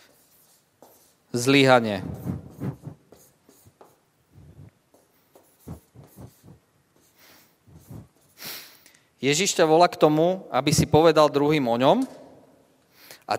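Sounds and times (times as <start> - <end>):
writing strokes scratching: 0.0 - 8.4
speech: 1.3 - 2.2, 9.2 - 12.2.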